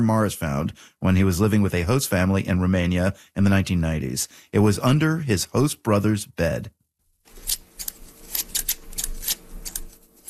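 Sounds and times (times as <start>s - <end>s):
speech: 0.0s - 6.8s
scissors cutting through a cloth flag: 7.3s - 10.2s.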